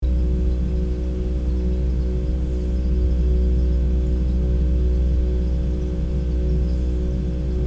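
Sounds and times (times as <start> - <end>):
small kitchen refrigerator hum: 0.0 - 7.6.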